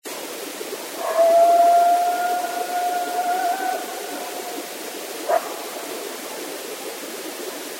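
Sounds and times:
coyotes howling: 1.0s - 5.7s.

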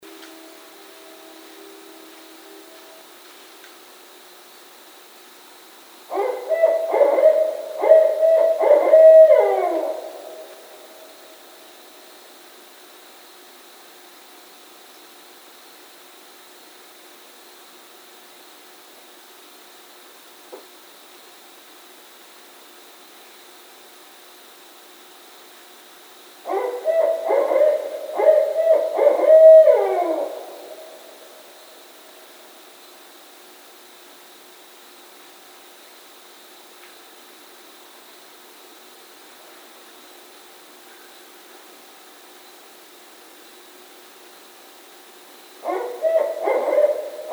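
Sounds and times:
barred owl calling: 6.1s - 11.3s, 26.5s - 31.8s, 45.6s - 47.3s.

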